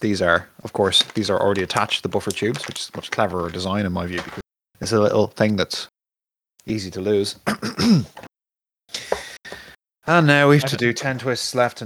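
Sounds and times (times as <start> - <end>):
speech: 0.0 - 5.9, 6.6 - 8.3, 10.1 - 11.8
person coughing with a throaty rasp: 7.4 - 8.2.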